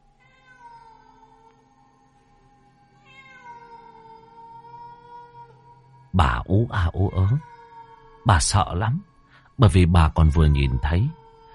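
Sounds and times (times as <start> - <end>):
black cat yowling eerily at night: 0.2 - 1.5, 3.0 - 8.8
speech: 6.2 - 7.5, 8.2 - 11.2.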